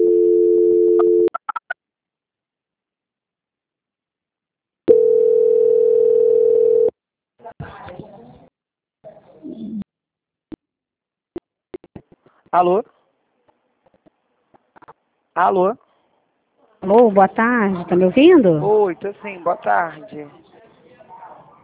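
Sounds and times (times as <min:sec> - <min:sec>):
steady telephone line tone while a call is transferred: 0:00.0 - 0:01.3, 0:04.9 - 0:06.9
speech: 0:12.6 - 0:13.0, 0:15.4 - 0:15.8, 0:16.9 - 0:20.4.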